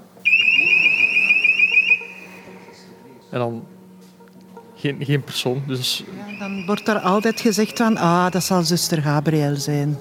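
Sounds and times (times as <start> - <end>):
loud high-pitched warbling electronic alarm: 0.2 - 2.4, 6.2 - 8.7
speech: 3.3 - 3.8, 4.8 - 9.9.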